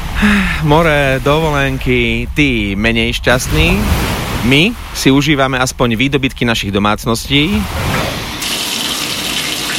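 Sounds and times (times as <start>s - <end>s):
speech: 0.2s - 7.9s
running water from a morning shower: 7.8s - 9.7s.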